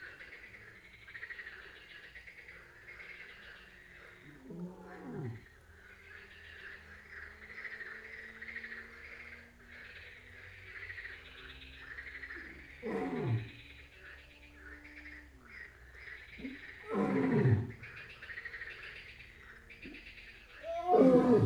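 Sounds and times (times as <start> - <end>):
lion roaring at night in Jászberény zoo: 4.4 - 5.5, 12.8 - 13.6, 16.4 - 17.9, 20.6 - 21.4.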